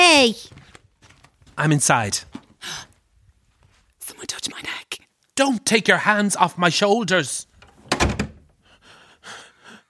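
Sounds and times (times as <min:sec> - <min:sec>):
speech: 0:00.2 - 0:00.6, 0:01.6 - 0:02.9, 0:05.4 - 0:07.5
scraping and shuffling as the latch settles: 0:00.4 - 0:04.0
door swinging shut with thud and rattle: 0:07.6 - 0:08.5.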